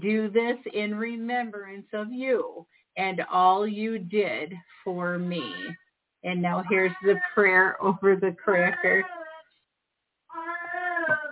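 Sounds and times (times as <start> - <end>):
speech: 0.0 - 9.2
old cat yowling: 10.4 - 11.3.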